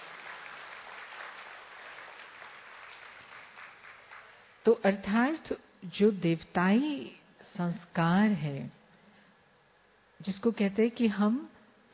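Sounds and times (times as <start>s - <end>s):
crowd applauding: 0.0s - 4.5s
speech: 4.7s - 8.8s, 10.2s - 11.9s.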